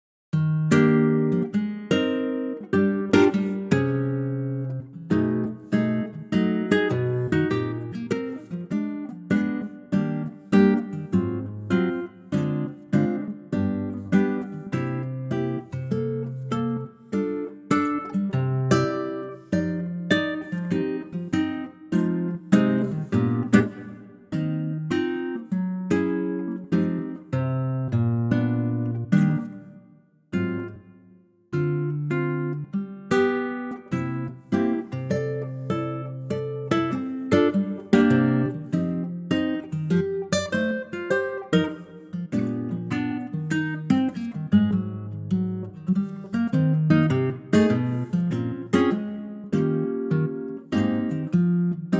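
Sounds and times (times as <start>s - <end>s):
guitar in E flat: 0.3s - 51.9s.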